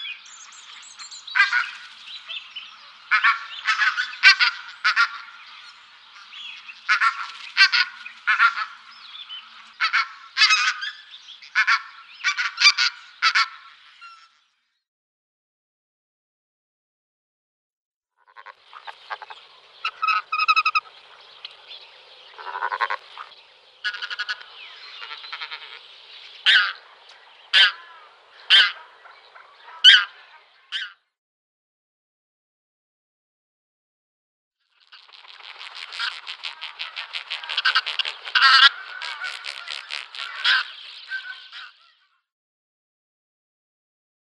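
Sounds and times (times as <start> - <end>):
pink-footed goose: 1.3 - 5.5, 6.2 - 14.4, 18.2 - 21.7, 22.3 - 31.0, 34.8 - 42.1.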